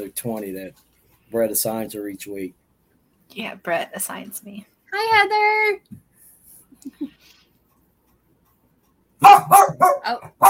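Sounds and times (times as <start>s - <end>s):
speech: 0.0s - 2.6s, 3.3s - 6.0s, 6.8s - 7.4s, 9.2s - 10.4s
dog barking: 9.2s - 10.4s.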